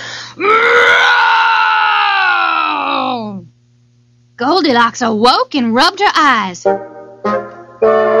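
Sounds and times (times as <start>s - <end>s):
person imitating a bear's rumbling growl: 0.4s - 3.5s
speech: 4.4s - 7.4s.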